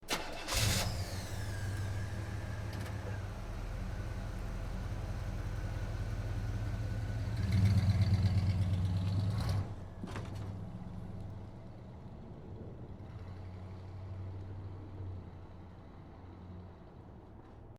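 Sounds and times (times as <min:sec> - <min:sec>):
muscle car engine starting: 0:00.0 - 0:11.4
muscle car driving away: 0:00.1 - 0:17.6.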